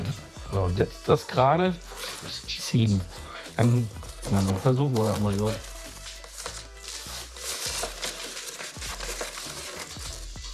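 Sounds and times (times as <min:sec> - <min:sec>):
speech: 0:00.5 - 0:05.7
plastic film tearing as a cutter knife drags through it: 0:01.9 - 0:02.4, 0:03.6 - 0:10.5.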